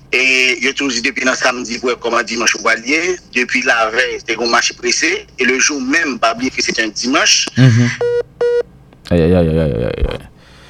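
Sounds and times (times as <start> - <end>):
speech: 0.1 - 8.2, 9.1 - 10.3
electronic telephone tone beep of incoming call: 8.0 - 8.6.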